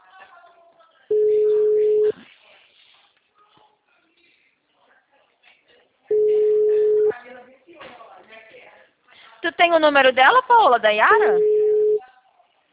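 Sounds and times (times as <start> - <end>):
faint voices: 0.0 - 9.6, 11.2 - 12.7
ringing tone of an outgoing telephone call: 1.1 - 2.1, 6.1 - 7.1, 11.2 - 12.0
speech: 9.6 - 11.5.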